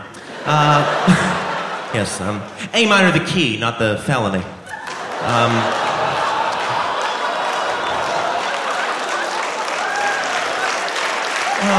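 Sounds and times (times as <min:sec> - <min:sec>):
laughter: 0:00.0 - 0:03.2, 0:04.6 - 0:11.7
speech: 0:00.4 - 0:04.6, 0:05.2 - 0:05.8
gentle audience applause: 0:04.7 - 0:11.7.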